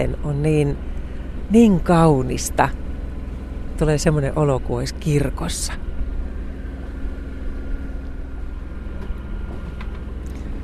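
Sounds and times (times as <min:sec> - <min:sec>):
speech: 0:00.0 - 0:00.9, 0:01.5 - 0:02.8, 0:03.8 - 0:05.8
sailboat inboard engine chugging in dead calm: 0:00.0 - 0:10.6.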